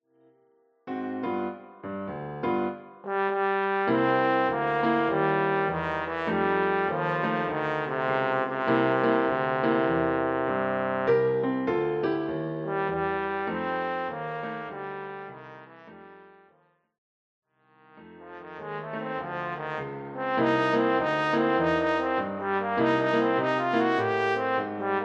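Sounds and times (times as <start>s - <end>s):
piano accompaniment: 0.2s - 16.5s, 17.9s - 25.0s
trombone playing blues: 3.1s - 11.1s, 12.6s - 16.5s, 18.1s - 25.0s.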